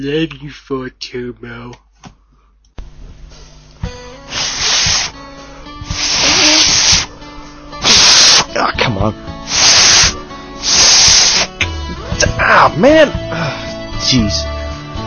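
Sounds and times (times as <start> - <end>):
speech: 0.0 - 1.8, 8.6 - 9.4, 12.4 - 14.5
breathy blown air from failed whistling attempts: 4.2 - 8.6, 9.4 - 11.7.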